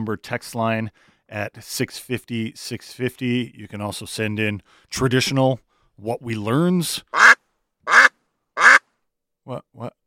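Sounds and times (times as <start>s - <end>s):
speech: 0.0s - 7.4s, 9.5s - 10.0s
duck quacking: 7.1s - 8.8s.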